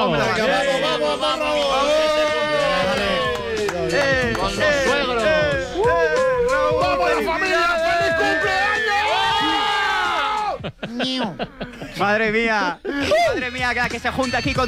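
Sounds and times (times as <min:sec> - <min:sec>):
crowd shouting and cheering at a birthday celebration: 0:00.0 - 0:10.8
speech: 0:00.1 - 0:01.9, 0:03.9 - 0:05.2, 0:10.9 - 0:14.6
laughter: 0:10.2 - 0:13.5.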